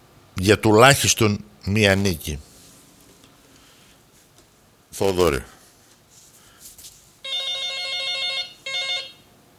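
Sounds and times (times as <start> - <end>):
speech: 0.4 - 2.5, 4.9 - 5.6
telephone ringing: 7.2 - 9.3.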